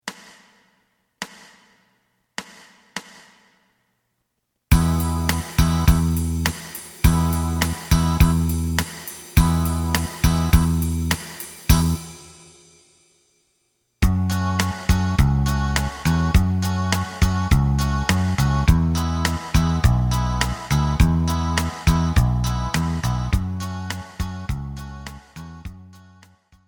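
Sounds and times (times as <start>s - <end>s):
melodic lead: 4.7s - 12.2s, 14.1s - 25.4s.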